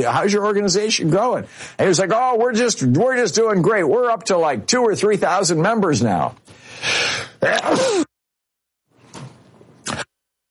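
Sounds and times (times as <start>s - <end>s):
speech: 0.0s - 8.0s
sharp exhale: 6.5s - 7.4s
person sniffing: 6.6s - 8.1s
person sneezing in cold weather: 7.0s - 8.2s.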